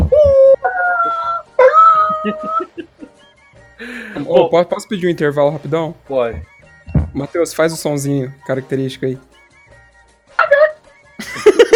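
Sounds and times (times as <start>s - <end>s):
neighbour's dog howling and yelping: 0.0s - 2.8s, 10.4s - 10.8s
laughter: 2.0s - 3.3s, 11.2s - 11.7s
speech: 2.2s - 2.7s, 4.2s - 6.5s, 7.1s - 9.4s.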